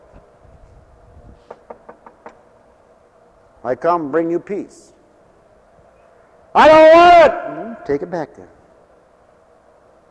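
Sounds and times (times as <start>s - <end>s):
knocking on a door: 1.5s - 2.4s
speech: 3.6s - 5.0s, 6.6s - 8.6s.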